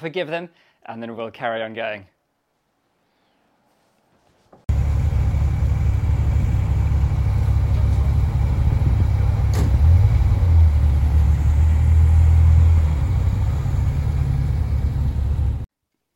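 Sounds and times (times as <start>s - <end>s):
speech: 0.0s - 2.2s
loud sports car engine rumbling and revving outside a window: 4.7s - 15.7s.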